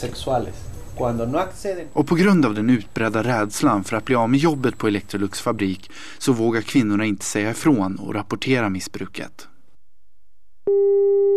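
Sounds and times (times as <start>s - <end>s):
speech: 0.0s - 9.5s, 10.7s - 11.0s
telephone call tone while dialing: 10.7s - 11.3s.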